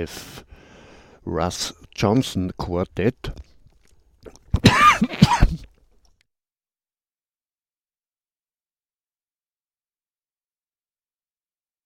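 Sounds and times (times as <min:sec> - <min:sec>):
speech: 0:00.0 - 0:00.5, 0:01.2 - 0:03.5
harsh throaty coughs: 0:04.4 - 0:05.8.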